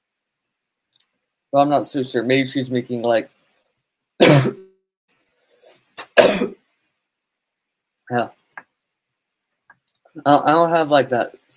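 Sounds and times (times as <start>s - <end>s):
speech: 1.5s - 3.4s, 4.2s - 4.6s, 8.1s - 8.4s, 10.2s - 11.5s
person coughing from choking on water: 4.2s - 4.8s, 6.0s - 6.6s.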